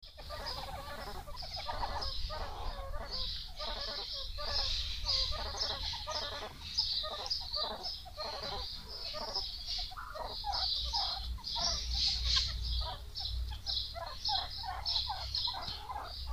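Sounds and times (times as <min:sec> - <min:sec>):
meerkat calls: 0:00.0 - 0:16.3.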